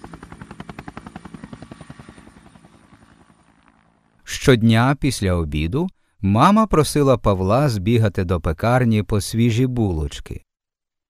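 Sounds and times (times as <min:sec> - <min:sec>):
helicopter rotor chopping: 0:00.0 - 0:04.2
speech: 0:04.4 - 0:10.4.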